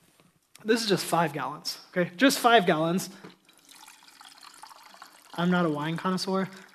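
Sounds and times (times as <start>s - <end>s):
speech: 0.6s - 3.4s, 5.4s - 6.7s
liquid pouring into a large glass: 3.2s - 6.7s.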